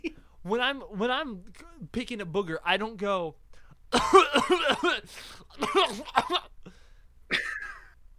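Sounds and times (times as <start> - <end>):
speech: 0.4 - 6.5
person giving exaggerated voiced coughs: 3.9 - 8.0.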